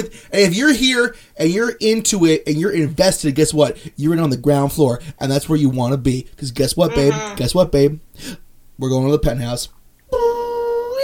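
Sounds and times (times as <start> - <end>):
speech: 0.0 - 10.2
voice imitating an elevator going up fast: 6.8 - 7.5.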